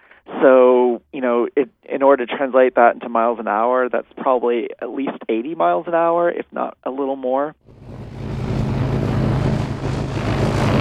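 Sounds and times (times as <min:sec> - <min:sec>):
speech: 0:00.3 - 0:07.9
small propeller plane engine droning in flight between Juneau and Haines: 0:07.6 - 0:10.7
strong gusty wind rushing: 0:07.6 - 0:10.7.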